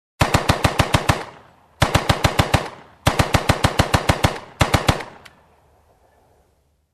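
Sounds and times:
machine gun shooting in a room: 0.2 - 5.2.

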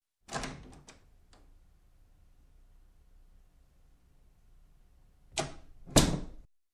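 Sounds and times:
office door opening and closing softly: 0.3 - 1.0, 5.4 - 6.4.

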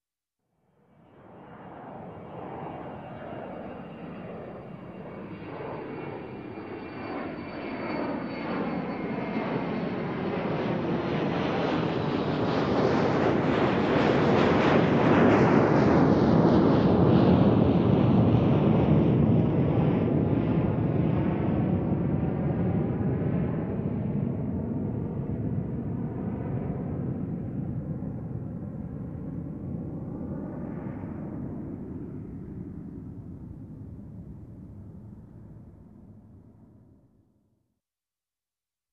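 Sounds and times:
jet aircraft taking off and flying over an airport: 1.1 - 36.9.

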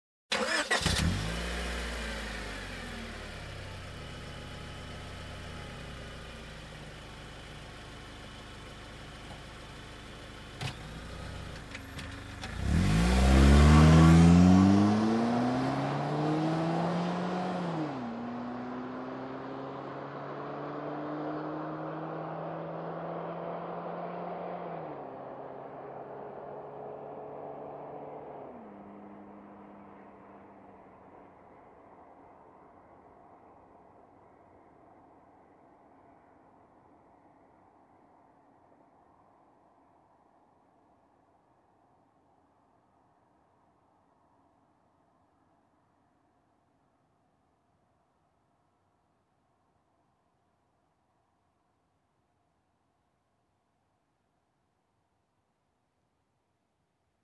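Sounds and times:
car driving away fast: 0.3 - 5.5, 10.2 - 31.4
car engine ignition: 0.3 - 31.4.

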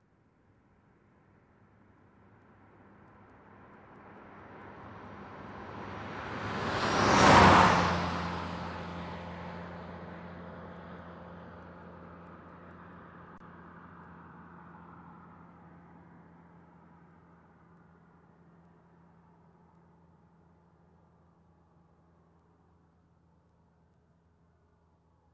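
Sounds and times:
car passing by fast: 4.2 - 16.1.

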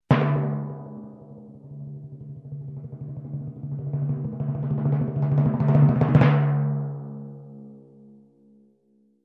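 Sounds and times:
long timpani crescendo: 0.1 - 7.0.

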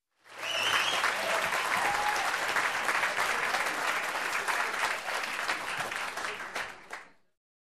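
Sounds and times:
audience in a show applauding: 0.2 - 7.2
audience in a show whistling: 0.3 - 2.4.

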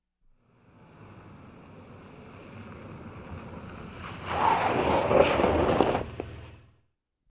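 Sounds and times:
car approaching on a rocky road: 0.4 - 6.8.

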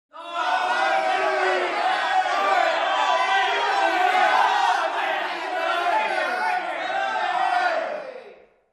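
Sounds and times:
crowd shouting and cheering: 0.1 - 8.6.

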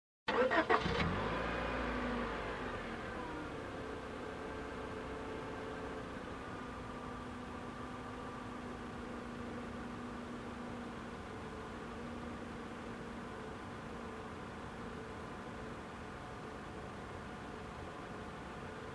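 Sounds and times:
car engine ignition: 0.3 - 3.7
car engine running idle: 0.3 - 18.8.

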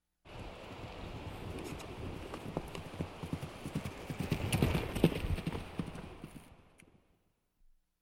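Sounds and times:
horse galloping: 0.4 - 6.7.

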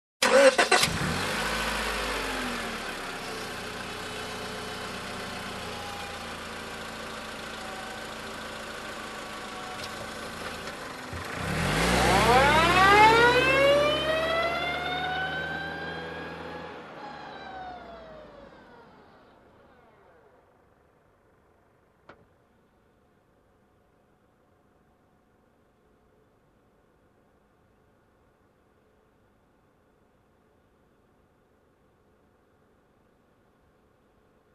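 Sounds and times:
car engine ignition: 0.2 - 22.1.

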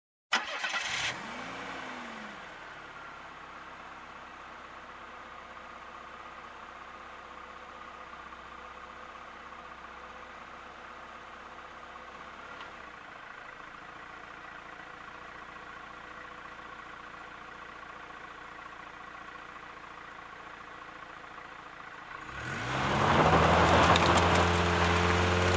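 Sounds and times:
engine ignition: 0.3 - 1.4
vehicle driving around and stopping: 0.4 - 25.5.

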